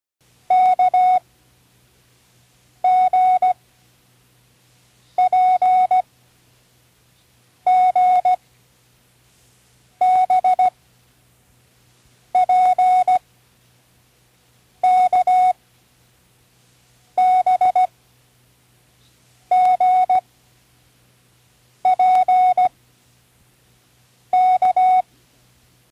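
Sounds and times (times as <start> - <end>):
morse code: 0.5 - 1.2, 2.8 - 3.6, 5.2 - 6.0, 7.7 - 8.4, 10.0 - 10.7, 12.4 - 13.2, 14.8 - 15.6, 17.2 - 17.9, 19.5 - 20.2, 21.9 - 22.7, 24.4 - 25.0.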